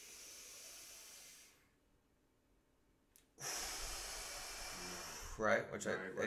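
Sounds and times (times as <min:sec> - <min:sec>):
slow controlled box breathing: 0:00.0 - 0:01.9, 0:03.4 - 0:05.6
speech: 0:05.4 - 0:06.2.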